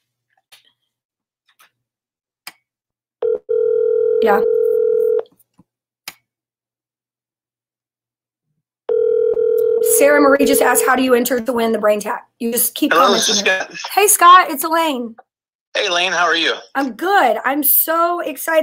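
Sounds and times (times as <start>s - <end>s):
outgoing telephone call ring tone: 3.2s - 5.2s, 8.9s - 11.0s
speech: 4.2s - 4.6s, 10.2s - 18.6s
laughter: 12.9s - 13.9s.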